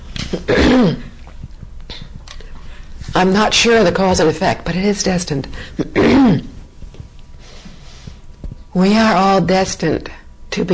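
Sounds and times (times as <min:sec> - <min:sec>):
speech: 0:00.3 - 0:01.1, 0:03.2 - 0:06.5, 0:08.8 - 0:10.7
throat-clearing cough: 0:00.3 - 0:01.2, 0:05.8 - 0:06.6.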